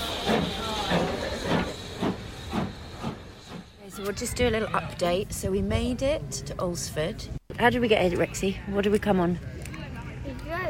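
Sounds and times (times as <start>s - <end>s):
steam train bursts of steam: 0.0s - 4.2s
steam festival shuttle train hissing and chuffing as it sets off: 0.0s - 4.7s
speech: 4.0s - 9.5s.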